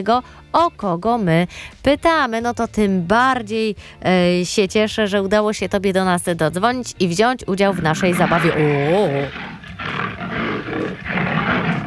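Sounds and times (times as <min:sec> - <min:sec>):
speech: 0:00.0 - 0:10.0
adult lion roaring: 0:07.7 - 0:11.8.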